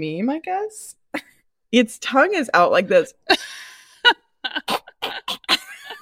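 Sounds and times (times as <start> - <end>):
speech: 0.0 - 4.8
short harsh dry coughs: 4.6 - 6.0.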